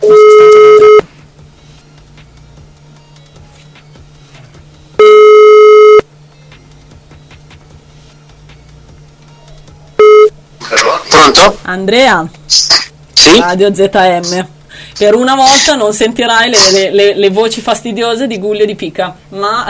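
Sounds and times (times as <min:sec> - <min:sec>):
ringback tone of an outgoing telephone call: 0:00.0 - 0:01.1, 0:05.0 - 0:06.1, 0:10.0 - 0:10.3
low steady hum: 0:00.0 - 0:19.6
speech: 0:11.4 - 0:19.6.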